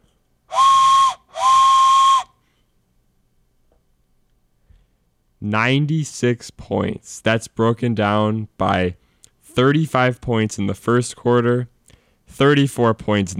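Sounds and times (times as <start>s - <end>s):
train whistle blasts: 0.5s - 2.4s
speech: 5.4s - 9.0s, 9.6s - 11.7s, 12.3s - 13.3s.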